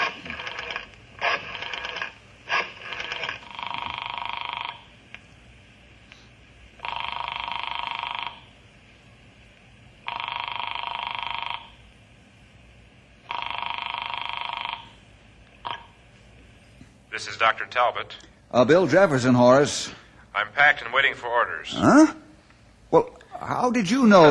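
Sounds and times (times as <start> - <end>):
telephone ringing in warbling bursts: 0.0 - 4.9, 6.8 - 8.5, 10.0 - 11.8, 13.2 - 15.0, 15.6 - 16.0
speech: 17.2 - 20.0, 20.6 - 22.2, 22.9 - 24.3.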